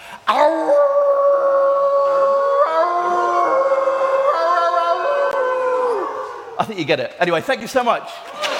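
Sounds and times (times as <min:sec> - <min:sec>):
human voice imitating a wolf howl: 0:00.3 - 0:06.6
speech: 0:06.6 - 0:08.5.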